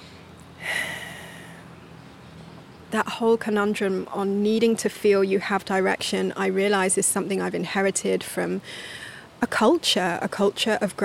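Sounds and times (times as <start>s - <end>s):
deep breath: 0.6s - 1.6s
speech: 2.9s - 11.0s.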